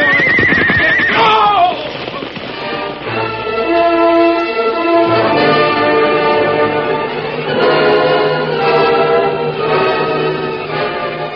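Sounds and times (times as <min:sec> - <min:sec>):
horse whinnying loudly: 0:00.0 - 0:02.9
faint galloping hoofbeats: 0:00.0 - 0:03.6
dense sustained tonal backdrop: 0:01.9 - 0:11.3.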